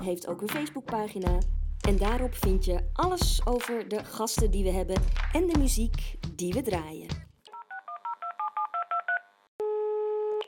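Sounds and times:
speech: 0.0s - 7.3s
telephone keypad dialing tones: 7.5s - 9.2s.

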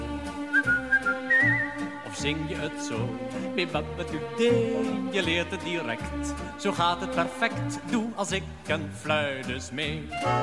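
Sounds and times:
instrumental backing music: 0.0s - 10.4s
person whistling a short bright melody: 0.5s - 2.0s
speech: 2.2s - 10.4s.

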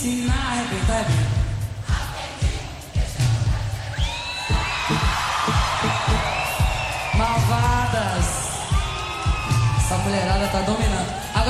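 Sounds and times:
speech: 0.0s - 1.4s, 10.0s - 11.4s
steady thumping drumbeat at a live show: 0.3s - 11.4s
crowd of women in audience shrieking and cheering: 3.9s - 11.4s.

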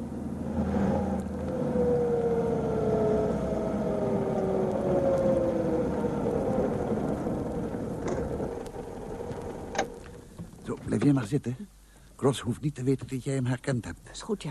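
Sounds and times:
car engine winding down as the car slows near a garage: 0.0s - 11.1s
speech: 11.0s - 14.4s.

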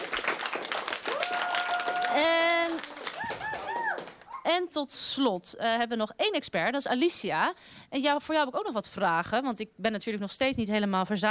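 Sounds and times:
audience in a hall applauding: 0.0s - 4.4s
whooping cheers: 1.0s - 4.5s
speech: 2.2s - 2.4s, 4.5s - 11.2s.

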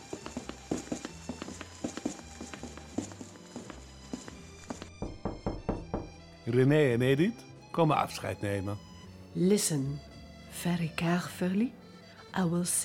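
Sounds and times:
donkey hooves clip-clopping in a walking rhythm: 0.0s - 6.2s
speech: 6.5s - 11.8s, 12.4s - 12.8s.

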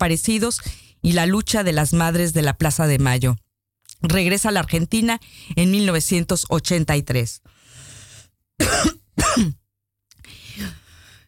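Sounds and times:
speech: 0.0s - 3.4s, 4.0s - 7.6s, 8.6s - 9.6s
person clearing throat: 8.6s - 9.6s
person coughing: 8.6s - 9.6s.

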